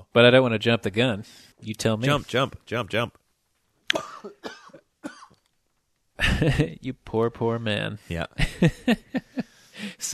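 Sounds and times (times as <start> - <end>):
speech: 0.1 - 3.2, 3.9 - 4.6, 6.2 - 10.1
man coughing into microphone: 3.9 - 5.4.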